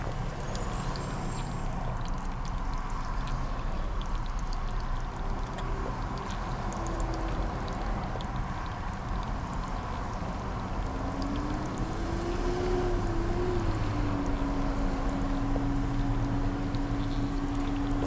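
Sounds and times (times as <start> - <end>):
person drinking water from a bottle: 0.1 - 18.0.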